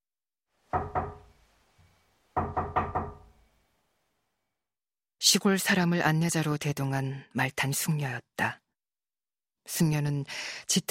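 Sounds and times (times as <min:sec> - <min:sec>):
knocking on a wooden door: 0:00.7 - 0:01.4, 0:02.4 - 0:03.4
speech: 0:05.3 - 0:08.6, 0:09.7 - 0:10.8.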